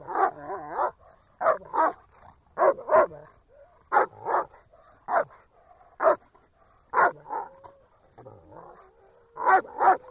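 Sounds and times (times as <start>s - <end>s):
German Shepherd dog barking: 0.0s - 2.0s, 2.6s - 6.3s, 6.9s - 7.5s, 9.4s - 10.0s.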